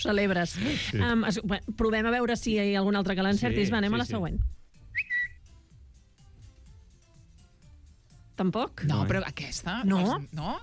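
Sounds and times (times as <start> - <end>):
speech: 0.0 - 4.6, 8.4 - 10.6
Twitter app notification whistle chirps: 4.9 - 5.4.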